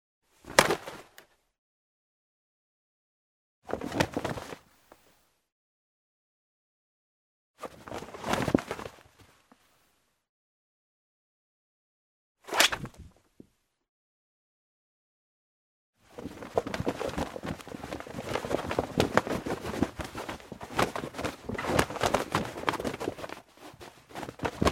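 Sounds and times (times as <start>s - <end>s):
clothes shaking: 3.7s - 4.6s, 7.6s - 9.0s, 16.0s - 24.7s.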